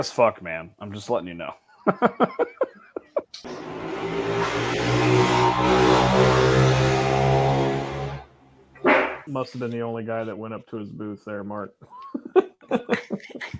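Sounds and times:
speech: 0:00.0 - 0:02.7, 0:09.3 - 0:13.5
laughter: 0:01.8 - 0:03.4, 0:11.8 - 0:13.5
passing car traffic rumble: 0:03.5 - 0:08.8.

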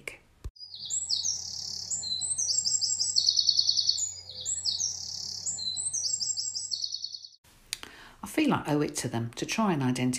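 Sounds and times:
wren singing a rapid complex warbling song: 0:00.6 - 0:07.4
speech: 0:08.6 - 0:10.1.

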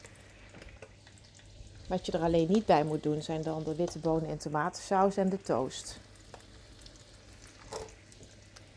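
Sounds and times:
sausages for an English breakfast sizzling in a frying pan: 0:00.0 - 0:08.7
speech: 0:01.9 - 0:06.0.

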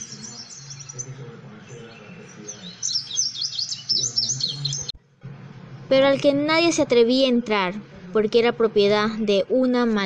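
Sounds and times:
birds singing and chirping in a garden full of flowers: 0:00.0 - 0:05.0
speech: 0:05.9 - 0:10.0.

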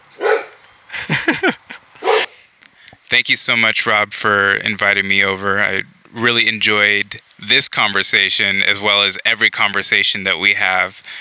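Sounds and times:
dog barking: 0:00.2 - 0:00.6, 0:02.0 - 0:02.3
laughter: 0:00.9 - 0:02.0
speech: 0:03.1 - 0:11.1.

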